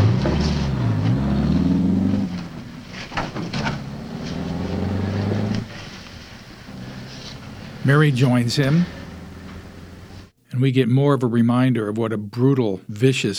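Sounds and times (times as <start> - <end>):
car engine rumbling as the car drives away: 0.0 - 10.4
speech: 7.9 - 9.0, 10.6 - 13.3.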